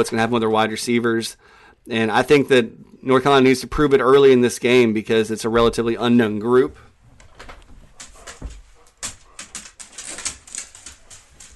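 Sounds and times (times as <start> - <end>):
speech: 0.0 - 6.9
dog paws running on a hard floor toward its dinner: 5.6 - 11.5.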